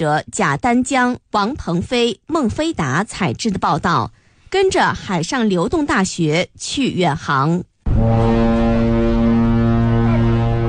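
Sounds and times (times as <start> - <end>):
speech: 0.0 - 8.3
navy training ship horn blast: 7.9 - 10.6.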